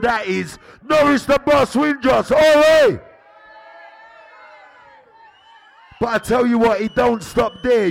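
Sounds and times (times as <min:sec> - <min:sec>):
speech: 0:00.0 - 0:03.1, 0:06.0 - 0:07.8
large crowd cheering: 0:01.8 - 0:07.8
many voices shouting together: 0:02.8 - 0:06.0.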